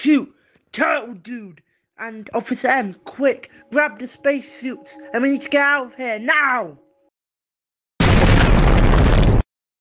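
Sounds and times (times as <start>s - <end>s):
speech: 0.0s - 6.8s
bombs exploding and destroying a spaceship: 8.0s - 9.4s.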